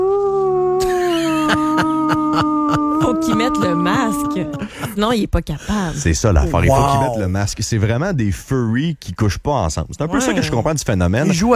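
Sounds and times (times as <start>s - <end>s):
masked person imitating a dog's howl: 0.0s - 4.9s
masked person imitating dog yips and barks: 0.8s - 4.9s, 6.5s - 7.2s
laughter: 0.8s - 7.2s, 10.1s - 11.5s
speech: 2.4s - 11.5s.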